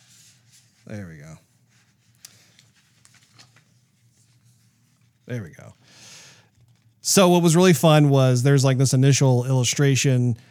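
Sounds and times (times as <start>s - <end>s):
speech: 0.9s - 1.5s, 5.3s - 5.8s, 7.1s - 10.5s
paper crackling and rustling while being handled and unfolded: 2.0s - 5.2s.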